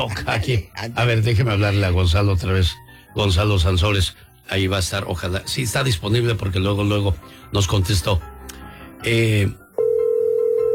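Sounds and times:
speech: 0.0 - 8.3, 9.0 - 9.6
telephone tone after a call is cut off: 9.8 - 10.7.

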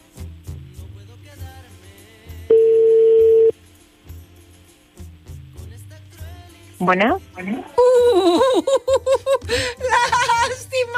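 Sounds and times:
electronic telephone ringback tone: 2.5 - 3.5
speech: 6.8 - 10.9
laughter: 7.8 - 10.9.

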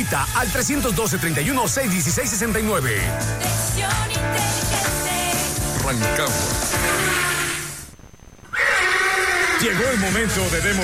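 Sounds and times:
speech: 0.0 - 4.8, 5.9 - 7.3, 9.6 - 10.8
horse neighing in a loud shrill whinny: 6.8 - 7.8, 8.4 - 10.2.

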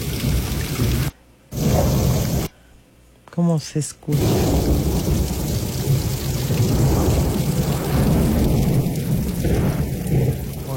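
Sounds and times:
loud steady rain in a thunderstorm: 0.0 - 2.5, 4.1 - 10.7
low rumbling thunder: 0.0 - 2.5, 4.1 - 10.7
speech: 3.4 - 4.6.

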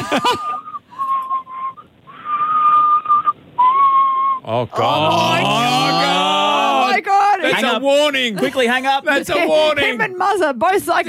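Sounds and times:
laughter: 0.0 - 0.8
speech: 0.1 - 0.6, 4.5 - 6.2, 7.4 - 11.0
person whistling a high note: 0.5 - 4.4.

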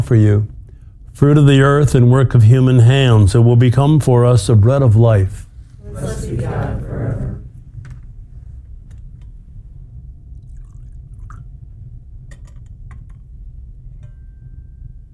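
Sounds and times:
low steady hum: 0.0 - 15.1
speech: 0.1 - 0.6, 1.2 - 5.4, 6.0 - 6.8
water poured into a chalice of wine: 10.3 - 11.6.

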